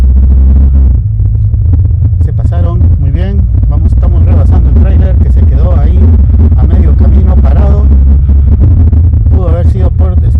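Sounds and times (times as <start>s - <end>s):
deep engine drone of passing cars: 0.0s - 10.3s
road traffic rumble: 0.0s - 10.3s.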